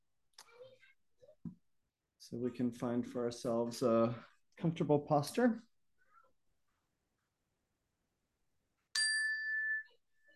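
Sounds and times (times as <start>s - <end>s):
speech: 2.3s - 5.7s
meditation bell struck at a meditation sitting: 9.0s - 9.8s.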